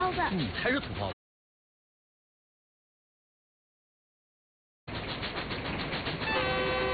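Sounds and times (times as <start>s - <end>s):
train rumbling along the rails: 0.0s - 1.1s, 4.9s - 6.9s
speech: 0.2s - 1.1s
sustained train horn tone: 6.2s - 6.9s.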